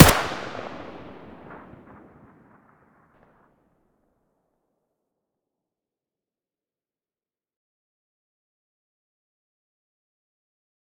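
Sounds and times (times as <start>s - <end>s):
AK-74U muzzle gunshot: 0.0s - 2.6s.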